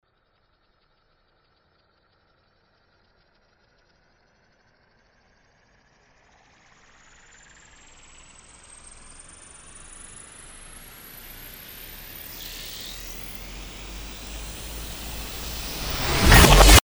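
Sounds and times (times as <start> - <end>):
build-up: 12.9 - 16.8.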